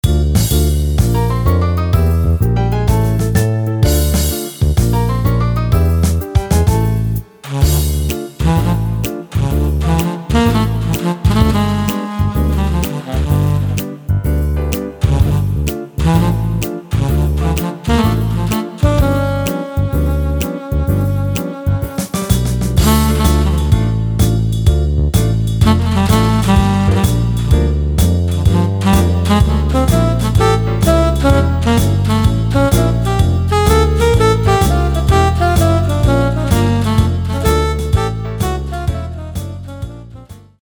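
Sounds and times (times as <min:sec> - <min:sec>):
Yamaha PSR-550 keyboard swing rhythm: 0:00.0 - 0:40.5.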